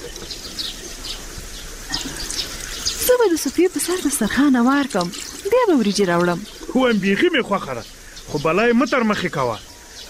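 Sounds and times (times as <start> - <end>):
warm water poured over soaped hands for washing: 1.9 - 6.8
speech: 3.1 - 10.0.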